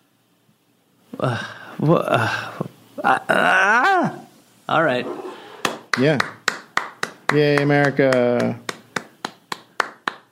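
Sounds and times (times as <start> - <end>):
faint room hum: 0.0 - 10.3
speech: 1.2 - 5.3, 6.0 - 6.4, 7.3 - 8.6
hand clapping: 5.6 - 10.3.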